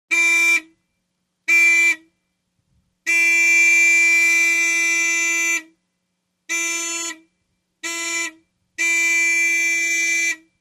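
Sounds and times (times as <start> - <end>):
1970 International Volks vehicle horn: 0.1 - 0.8, 1.5 - 2.1, 3.0 - 5.8, 6.5 - 10.6.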